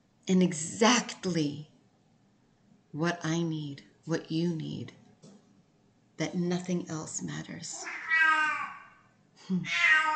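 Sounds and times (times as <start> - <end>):
speech: 0.3 - 1.7, 2.9 - 5.0, 6.2 - 8.0, 9.5 - 10.1
cat meowing: 7.8 - 9.0, 9.6 - 10.1.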